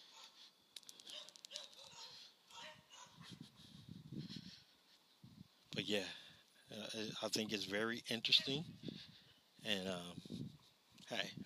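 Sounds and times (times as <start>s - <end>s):
dogs barking in short sharp yelps: 0.0s - 0.4s, 1.0s - 3.4s
speech: 5.8s - 8.9s, 9.6s - 10.5s, 11.1s - 11.4s.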